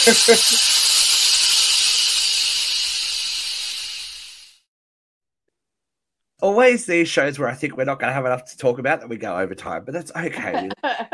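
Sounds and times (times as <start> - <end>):
laughter: 0.0 - 0.6, 10.2 - 11.1
speech: 0.0 - 1.0, 6.5 - 11.1
loud steady hiss of steam being released: 0.0 - 4.7.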